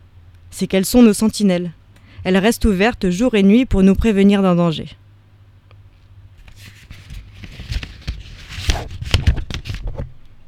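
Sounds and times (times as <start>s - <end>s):
speech: 0.6s - 5.0s
newspaper being crumpled: 6.4s - 10.1s.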